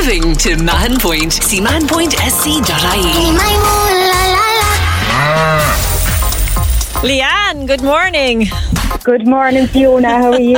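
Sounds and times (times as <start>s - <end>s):
speech: 0.0s - 4.5s, 5.2s - 5.9s, 7.0s - 10.5s
cow mooing with wavering sliding pitch: 4.8s - 5.9s.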